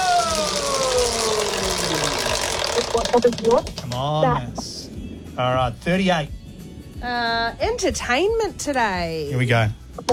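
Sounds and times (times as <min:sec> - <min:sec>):
prize wheel spinning and clicking: 0:00.0 - 0:04.2
steady whirring hum of spinning prize wheel: 0:00.0 - 0:10.1
speech: 0:02.9 - 0:04.8, 0:05.4 - 0:06.4, 0:07.0 - 0:10.1.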